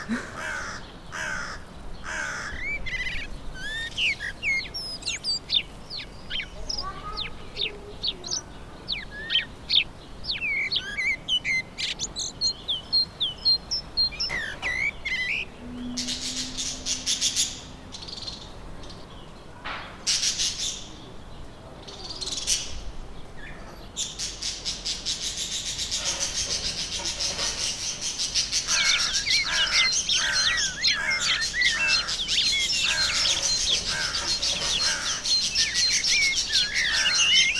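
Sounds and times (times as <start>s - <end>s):
crows cawing loudly in a park: 0.0s - 3.9s, 28.6s - 37.5s
many birds chirping and tweeting in a park: 0.0s - 37.5s.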